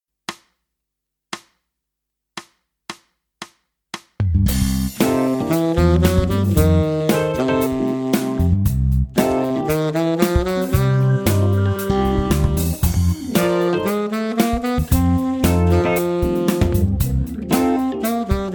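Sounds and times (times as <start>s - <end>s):
funk tenor: 4.5s - 18.5s.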